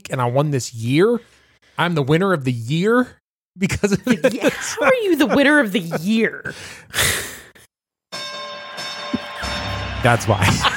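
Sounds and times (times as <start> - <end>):
speech: 0.1 - 7.2, 10.0 - 10.7
laughter: 3.6 - 6.5, 9.2 - 10.7
breathy sigh: 6.4 - 7.7
bell ringing with a shimmering tone: 8.1 - 10.7.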